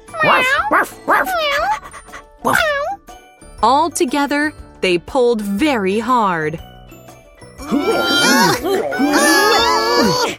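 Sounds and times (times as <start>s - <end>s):
person imitating dog barks: 0.1s - 1.8s, 2.4s - 3.0s, 7.6s - 10.3s
speech: 0.2s - 1.4s, 3.6s - 6.7s, 7.7s - 10.3s.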